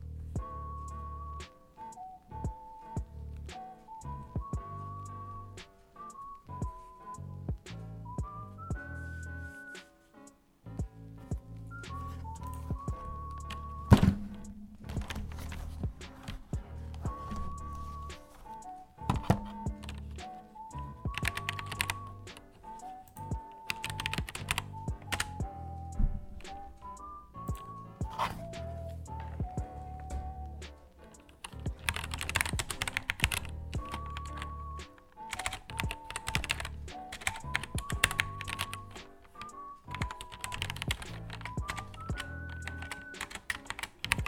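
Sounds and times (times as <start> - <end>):
soft background tune of stepping high notes: 0.0 - 44.2
mechanical keyboard with black switches typing: 11.8 - 16.4, 17.1 - 20.4, 21.0 - 25.4, 31.2 - 44.2.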